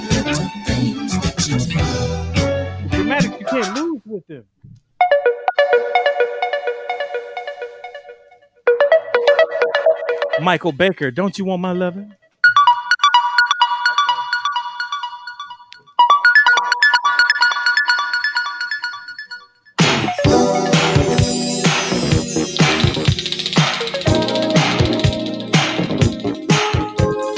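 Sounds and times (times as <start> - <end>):
bright chiming keyboard melody: 0.0 - 3.9, 5.0 - 27.3
drums: 0.0 - 3.9, 19.8 - 27.3
bass: 0.0 - 4.8, 19.8 - 27.3
speech: 3.2 - 4.6, 10.4 - 12.2.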